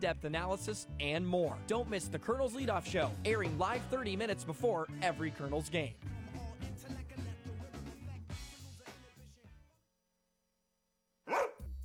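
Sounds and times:
speech: 0.0s - 6.1s
upbeat music: 0.0s - 9.4s
single loud dog bark: 11.3s - 11.6s.

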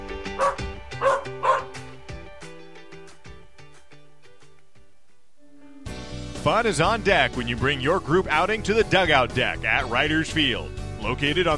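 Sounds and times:
dog barking: 0.4s - 1.8s
speech: 6.5s - 11.5s.

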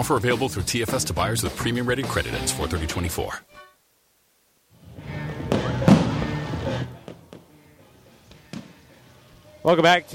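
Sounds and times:
speech: 0.0s - 3.7s, 9.6s - 10.1s
fireworks exploding outdoors at a baseball ballpark after the game: 5.4s - 7.6s.

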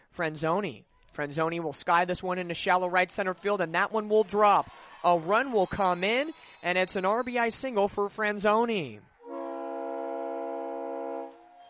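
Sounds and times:
noise at a ballpark: 0.0s - 11.6s
speech: 0.2s - 9.1s
train horn sounding at a ballpark during a baseball game: 9.2s - 11.6s.

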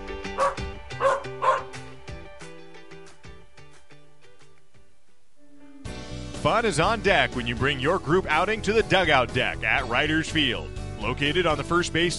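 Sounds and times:
dog barking: 0.4s - 1.7s
speech: 6.5s - 12.1s.

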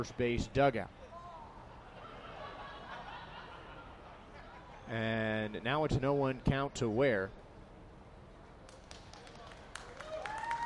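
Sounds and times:
speech: 0.0s - 1.0s, 4.9s - 7.4s
laughter: 1.7s - 4.9s
scattered clapping: 8.7s - 10.6s
baseball stadium crowd cheering: 9.2s - 10.6s.

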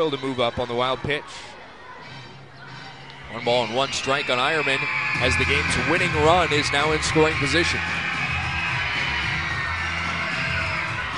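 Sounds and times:
speech: 0.0s - 2.2s, 3.3s - 8.0s
ballpark crowd of kids screaming and shouting: 2.6s - 11.1s.

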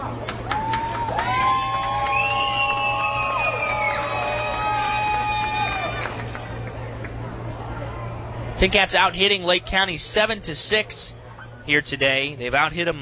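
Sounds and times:
big ballpark crowd roaring and cheering: 0.0s - 7.2s
high shouts and whoops: 0.5s - 6.2s
speech: 8.6s - 13.0s.

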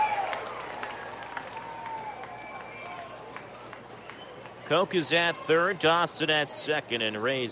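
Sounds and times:
home baseball crowd cheering and clapping after a batter draws a walk: 0.0s - 7.4s
speech: 4.7s - 7.4s.

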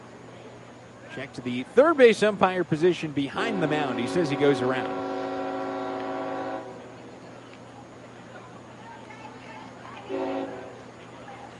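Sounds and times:
low rumble of the passing train: 0.0s - 11.5s
speech: 1.2s - 5.0s
train horn blasting: 3.4s - 6.9s, 10.1s - 10.8s.

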